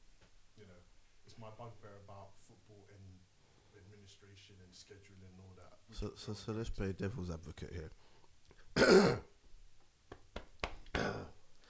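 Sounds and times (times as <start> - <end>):
speech: 1.3 - 8.1, 8.8 - 9.3
man clearing his throat: 8.8 - 9.3, 11.0 - 11.4.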